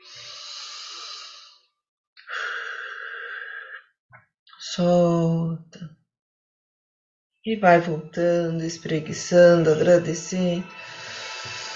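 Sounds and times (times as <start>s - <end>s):
deep breath in and out: 0.0s - 4.0s, 10.7s - 11.7s
speech: 4.8s - 6.0s, 7.4s - 11.6s.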